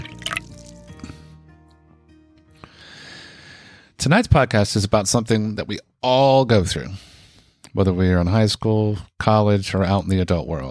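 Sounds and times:
drink pouring into a glass: 0.0s - 1.1s
speech: 4.0s - 7.1s, 7.7s - 10.7s.

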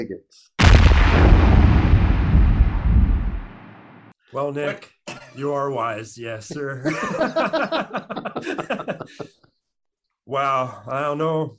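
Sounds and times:
speech: 0.0s - 1.7s, 4.3s - 9.6s, 10.3s - 11.5s
explosion with rumbling boom: 0.6s - 4.1s
laughter: 6.6s - 9.5s.

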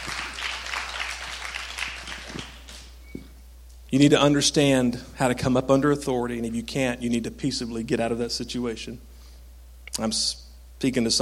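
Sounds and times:
small group of people clapping in a room: 0.0s - 3.0s
speech: 3.9s - 9.1s, 10.0s - 11.2s.

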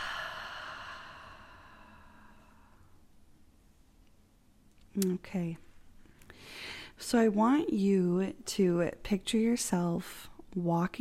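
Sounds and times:
deep breath exhaled during a guided relaxation exercise: 0.0s - 2.9s
speech: 5.0s - 5.7s, 7.0s - 10.9s.

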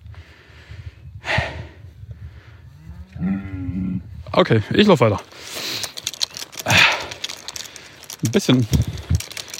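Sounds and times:
cow mooing with a low harmonic bellow: 2.8s - 4.0s
speech: 4.4s - 5.5s, 8.3s - 9.1s.

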